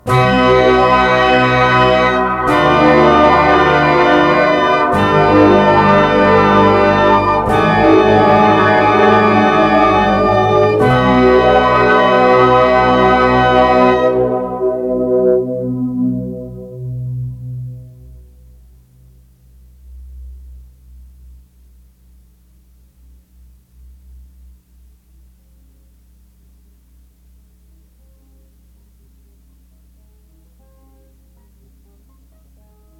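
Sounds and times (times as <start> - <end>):
synthesizer parts: 0.0 - 19.1.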